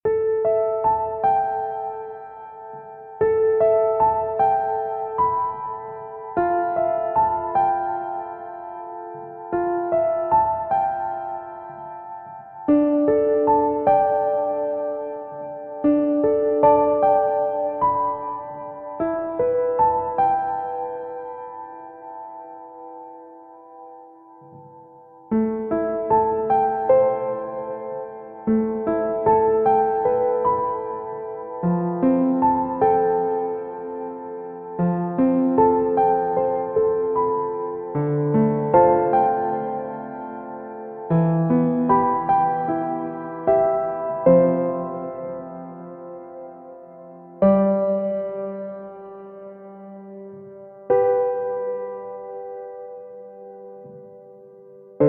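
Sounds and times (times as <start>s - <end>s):
acoustic piano: 0.0s - 55.0s.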